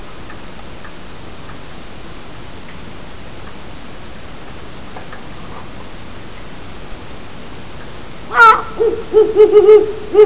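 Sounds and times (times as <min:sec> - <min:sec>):
owl screeching: 0:08.3 - 0:10.2.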